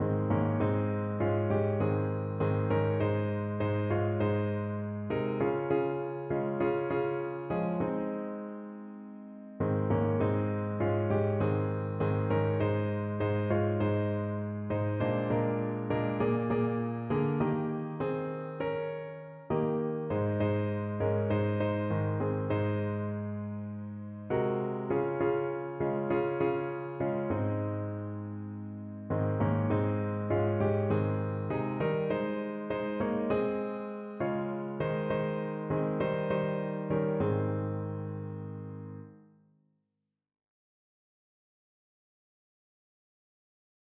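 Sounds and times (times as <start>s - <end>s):
piano piece: 0.0s - 39.4s.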